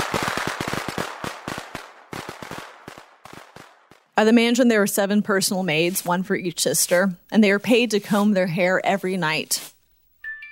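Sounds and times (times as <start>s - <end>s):
fireworks crackling and popping: 0.0s - 4.8s
speech: 4.2s - 9.7s.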